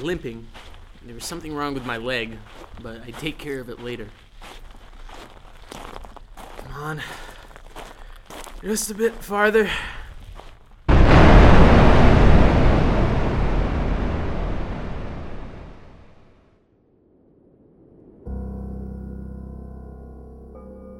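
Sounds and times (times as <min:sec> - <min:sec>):
speech: 0:00.0 - 0:04.6, 0:06.8 - 0:07.3, 0:08.6 - 0:10.0
low steady droning hum: 0:10.9 - 0:16.4
loud explosion rumbling: 0:10.9 - 0:18.3.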